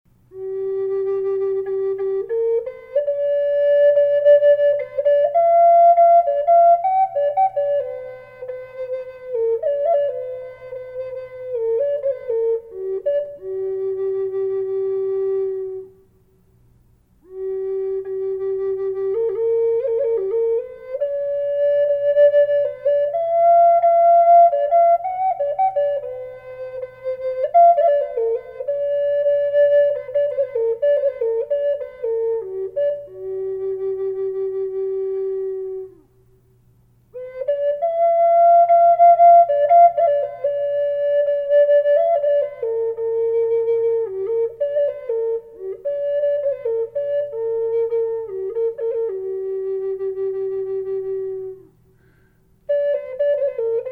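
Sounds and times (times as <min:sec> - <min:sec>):
flute with reverb: 0:00.3 - 0:16.1, 0:17.2 - 0:36.3, 0:37.1 - 0:53.9.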